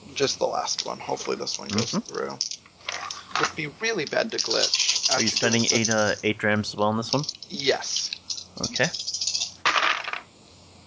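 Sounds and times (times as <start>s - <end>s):
speech: 0.2s - 2.5s, 3.4s - 9.1s
dice tumbling across a hard surface: 1.5s - 6.2s, 7.2s - 10.3s.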